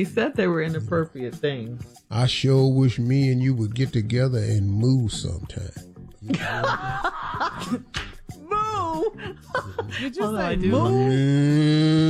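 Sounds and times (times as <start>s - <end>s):
speech: 0.0s - 8.1s, 8.8s - 12.0s
person chuckling: 6.2s - 7.9s, 9.0s - 10.2s
man imitating a cow mooing: 11.0s - 12.0s.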